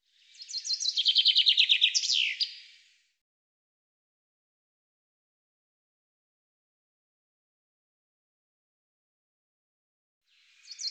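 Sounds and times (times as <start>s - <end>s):
common chaffinch song: 0.2s - 3.0s, 10.3s - 10.9s.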